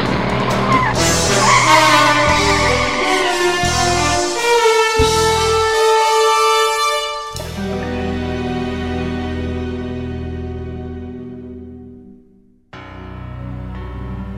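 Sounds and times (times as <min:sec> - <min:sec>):
Aston Martin DB5 tires squealing: 0:00.0 - 0:07.4
Aston Martin DB5 car engine revving through gear changes: 0:00.0 - 0:10.6.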